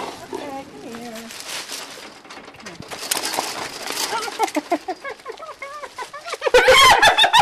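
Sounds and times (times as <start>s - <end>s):
captive spotted hyena giggling: 4.1s - 7.4s.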